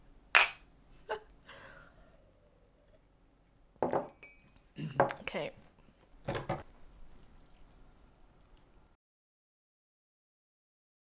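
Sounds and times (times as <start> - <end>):
ceramic mugs clinking together in a toast: 0.4 - 0.7, 3.8 - 5.2
speech: 5.3 - 5.6.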